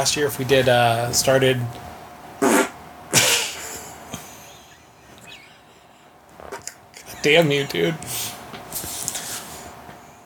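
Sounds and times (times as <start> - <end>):
speech: 0.0 - 1.9, 7.2 - 8.4
loud raspy fart-like blasts: 2.4 - 2.8.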